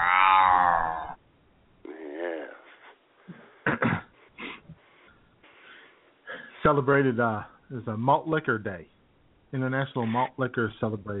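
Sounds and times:
cat meow imitated by a human voice: 0.0 - 1.2
growling yowling call: 0.0 - 1.2
speech: 6.7 - 11.1.

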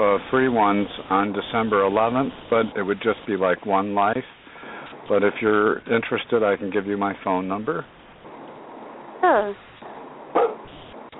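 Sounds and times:
speech: 0.1 - 4.4, 5.1 - 8.0, 9.2 - 9.7
dog yelping: 10.4 - 10.7.

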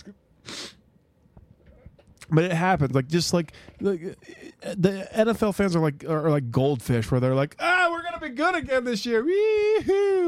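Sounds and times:
person sneezing: 0.4 - 0.8
speech: 2.3 - 10.2.

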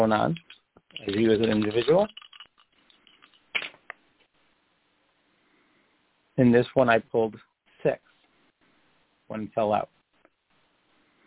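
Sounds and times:
speech: 0.0 - 2.2, 6.4 - 8.0, 9.3 - 10.0
dice tumbling onto a hard surface: 0.3 - 3.9.

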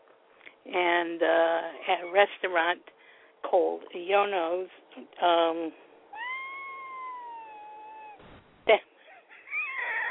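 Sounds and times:
speech: 0.7 - 5.8, 8.7 - 8.9
cat meowing for attention: 6.2 - 8.3
short sharp sound: 8.2 - 8.6.

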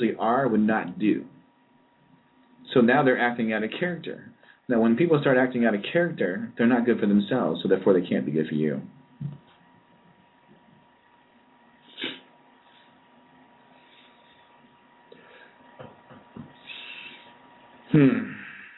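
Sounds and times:
speech: 0.0 - 1.4, 2.7 - 9.4, 18.0 - 18.3
sharp intake of breath: 4.4 - 4.7, 11.8 - 12.9, 16.6 - 17.4
loud sneeze: 11.9 - 12.3.

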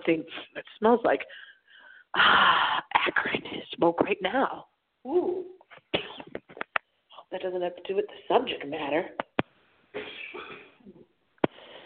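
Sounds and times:
speech: 0.0 - 1.5, 2.1 - 6.3, 7.3 - 9.3, 10.0 - 10.6
person coughing with a raspy rattle: 6.0 - 6.4, 10.0 - 10.8.

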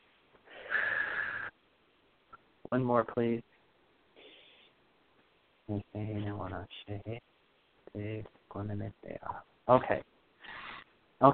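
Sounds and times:
deep breath in through the nose and out through the mouth: 0.4 - 1.6, 4.2 - 4.8
speech: 2.7 - 3.5, 5.7 - 7.3, 7.9 - 10.1, 11.2 - 11.3.

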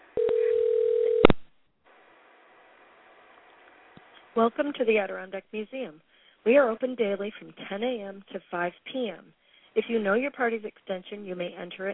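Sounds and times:
telephone dial tone: 0.2 - 1.4
speech: 4.4 - 11.9.

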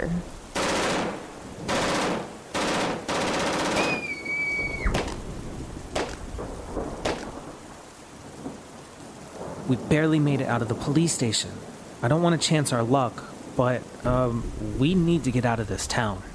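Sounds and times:
automatic gunfire in a game: 0.6 - 4.0, 7.0 - 7.3
high falling whistle: 3.8 - 5.0
sharp single gunshot cracks: 4.9 - 5.2, 6.0 - 6.2, 7.0 - 7.4
speech: 9.7 - 16.3.

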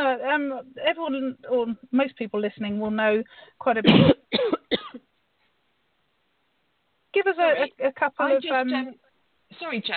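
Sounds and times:
speech: 0.1 - 5.0, 7.2 - 9.9
person coughing and choking after catching their breath: 3.8 - 5.1.

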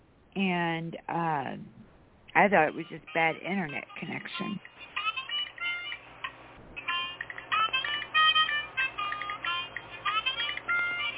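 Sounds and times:
speech: 0.4 - 1.8, 2.4 - 4.7
harmonica-like ringtone melody: 2.7 - 6.1, 6.8 - 11.1.

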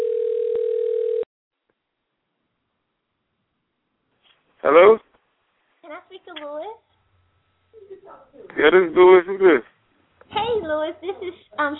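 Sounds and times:
electronic telephone ringing tone through a phone line: 0.0 - 1.3
speech: 4.6 - 5.0, 7.9 - 9.7, 10.4 - 11.7.

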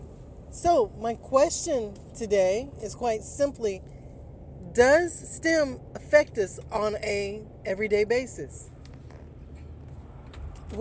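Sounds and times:
road and engine rumble inside a moving car: 0.0 - 10.7
speech: 0.6 - 4.0, 4.8 - 8.7.

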